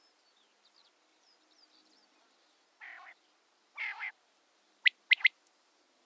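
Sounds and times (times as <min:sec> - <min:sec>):
common quail calling: 0:02.8 - 0:03.2, 0:03.8 - 0:04.2, 0:04.8 - 0:05.4.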